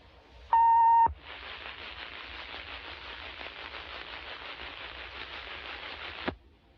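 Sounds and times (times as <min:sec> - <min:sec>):
even hissing static: 0:00.0 - 0:06.4
emergency action notification system test tone: 0:00.5 - 0:01.2.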